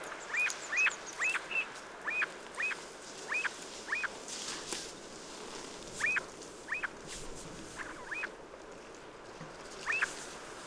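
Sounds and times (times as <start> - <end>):
snow partridge Lerwa lerwa call: 0.4 - 4.1, 6.0 - 7.0, 7.7 - 8.3, 9.8 - 10.2.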